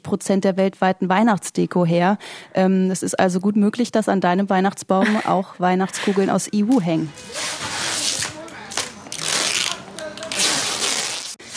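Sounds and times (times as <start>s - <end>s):
speech: 0.1s - 7.8s
packing tape being pulled off rolls: 7.2s - 11.5s.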